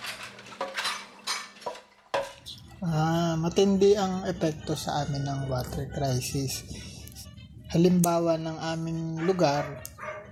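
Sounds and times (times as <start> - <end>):
dishes, glasses and cutlery clinking while washing up: 0.0 - 2.8
speech: 2.8 - 6.9, 7.7 - 9.9.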